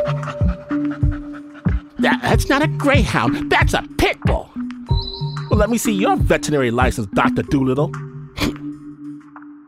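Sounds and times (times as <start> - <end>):
dog panting: 0.0 - 3.5
speech: 2.1 - 4.5, 5.6 - 8.6.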